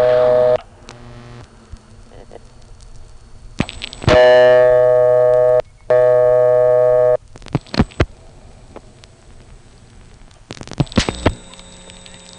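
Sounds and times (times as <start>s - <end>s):
steady electronic tones: 0.0s - 1.5s, 3.3s - 8.6s, 10.8s - 12.3s.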